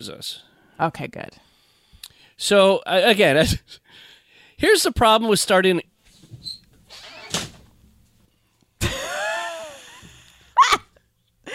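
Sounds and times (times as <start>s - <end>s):
speech: 0.0s - 1.5s, 2.4s - 5.9s
door creaking open: 6.2s - 7.9s.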